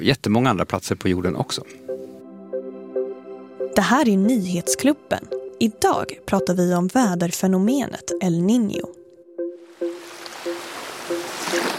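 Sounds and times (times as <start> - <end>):
speech: 0.0 - 1.9, 3.8 - 9.0
gentle ocean waves lapping: 9.6 - 11.7.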